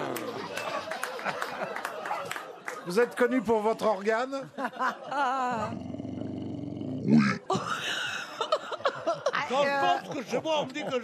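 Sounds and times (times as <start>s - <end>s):
laughter: 0.0s - 5.8s, 7.3s - 11.0s
speech: 2.9s - 5.9s, 9.6s - 11.0s
person imitating a lion's roar: 5.6s - 7.5s.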